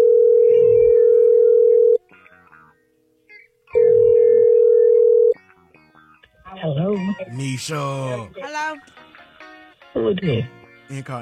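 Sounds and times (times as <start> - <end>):
telephone ringback tone while calling a listener: 0.0 - 2.0, 3.8 - 5.4
speech: 7.3 - 9.1, 10.0 - 11.2.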